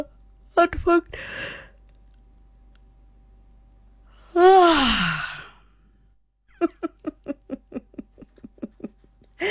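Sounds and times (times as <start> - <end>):
speech: 0.0 - 1.6, 4.4 - 5.3
deep deliberate voiced yawn: 4.4 - 5.6
laughter: 6.6 - 9.1.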